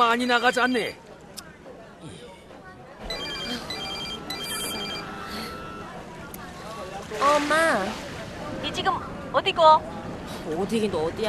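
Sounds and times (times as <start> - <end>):
speech: 0.0 - 1.0, 7.1 - 8.0, 8.6 - 11.2
mobile phone ringing on a ship with an electronic ringtone: 3.0 - 5.8.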